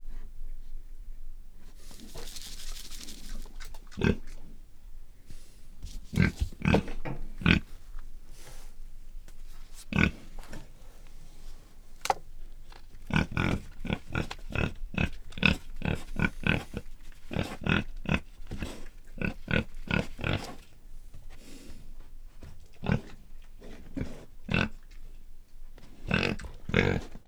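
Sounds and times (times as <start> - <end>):
domestic pig grunting: 3.8 - 4.5, 6.1 - 7.8, 9.9 - 10.5, 13.1 - 20.7, 22.4 - 25.0, 25.8 - 27.2.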